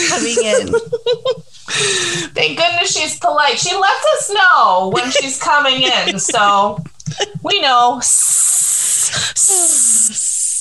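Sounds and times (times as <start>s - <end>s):
laughter: 0.0s - 3.0s, 4.8s - 7.5s
speech: 0.1s - 8.4s, 9.1s - 10.3s
person imitating a snake's hiss: 8.0s - 10.5s.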